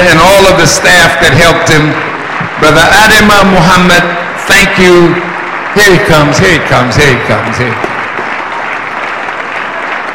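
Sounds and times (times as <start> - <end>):
speech: 0.6 - 7.9
dense audience applause at a gathering: 1.4 - 10.1.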